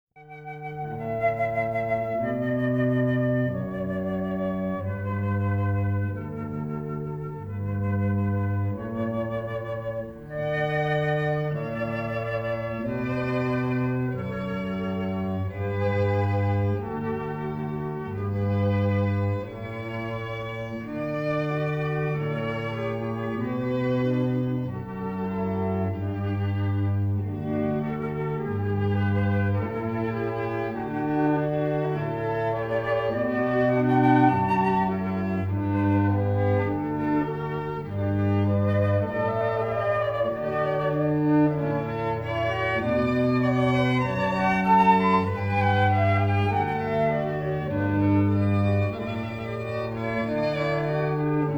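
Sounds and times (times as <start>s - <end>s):
cello: 0.2s - 51.5s
flute: 0.2s - 51.5s
violin: 0.2s - 51.5s.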